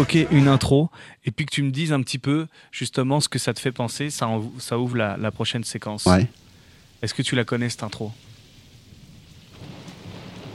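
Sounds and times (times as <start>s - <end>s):
speech: 0.0s - 6.4s, 7.0s - 8.3s
steady rain hissing: 3.2s - 10.5s
low rolling rumble of thunder: 8.1s - 10.5s.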